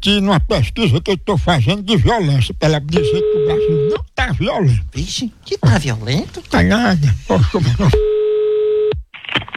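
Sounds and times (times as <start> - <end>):
speech: 0.0 - 8.1
outgoing phone call ringback tone: 3.0 - 4.0, 8.0 - 9.0.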